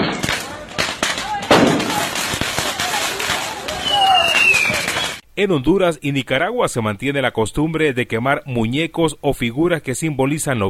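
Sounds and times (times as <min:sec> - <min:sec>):
firecrackers popping and banging: 0:00.0 - 0:05.2
busy outdoor background: 0:00.0 - 0:05.4
rocket whistling: 0:03.7 - 0:05.2
speech: 0:05.4 - 0:10.6.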